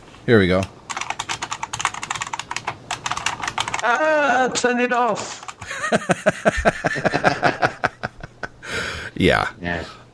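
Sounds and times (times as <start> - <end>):
speech: 0.3 - 0.8, 3.8 - 7.9, 9.2 - 10.1
typing a sentence on a keyboard: 0.6 - 4.0, 5.1 - 5.7
laughter: 5.6 - 8.6.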